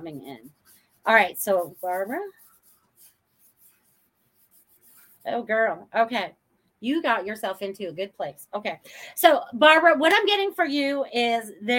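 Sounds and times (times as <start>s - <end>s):
speech: 0.0s - 2.4s, 5.2s - 11.7s
pen scratching on paper writing a name: 0.0s - 5.4s.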